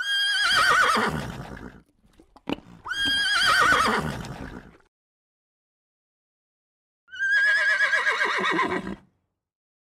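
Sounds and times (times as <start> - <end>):
horse whinnying: 0.0 - 1.8, 2.5 - 4.8, 7.1 - 9.0
horse snort: 1.1 - 4.9.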